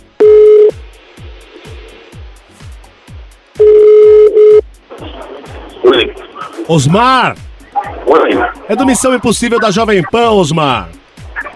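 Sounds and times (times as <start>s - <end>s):
telephone dial tone: 0.2s - 0.7s, 3.6s - 4.6s
speech: 6.7s - 7.4s, 8.1s - 11.0s.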